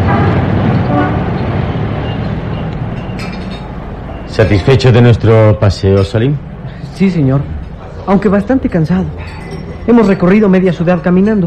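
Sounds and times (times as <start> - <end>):
dense street traffic rumbling in a city centre: 0.0 - 11.4
car horn tooting: 0.1 - 1.4
speech: 4.4 - 11.4.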